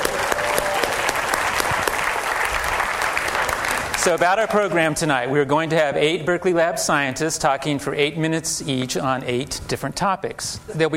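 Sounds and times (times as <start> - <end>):
audience applauding at a science talk event: 0.0 - 4.9
speech: 4.0 - 10.9.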